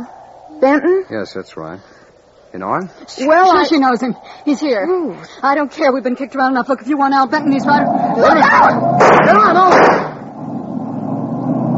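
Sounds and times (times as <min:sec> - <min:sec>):
speech: 0:00.6 - 0:10.1
car engine revving and speeding away: 0:07.4 - 0:11.7.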